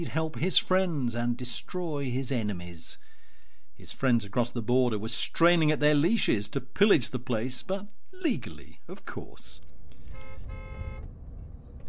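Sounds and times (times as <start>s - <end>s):
speech: 0.0s - 3.0s, 3.8s - 9.7s
car engine rumbling low and steady: 9.6s - 11.8s
car horn blasts: 10.0s - 11.1s.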